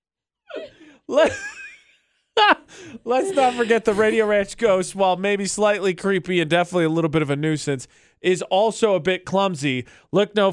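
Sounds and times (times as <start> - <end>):
loud breathing into a microphone: 0.7 - 1.1, 2.7 - 4.3, 7.9 - 8.2, 9.8 - 10.2
speech: 1.1 - 1.5, 3.1 - 10.5
laughter: 1.1 - 5.1.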